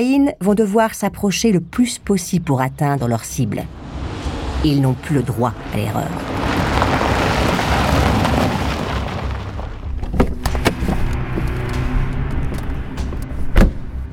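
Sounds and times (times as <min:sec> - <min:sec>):
speech: 0:00.0 - 0:03.8, 0:04.6 - 0:06.4
car engine and road rumble: 0:01.1 - 0:14.1
car doors opening and slamming: 0:13.0 - 0:14.0.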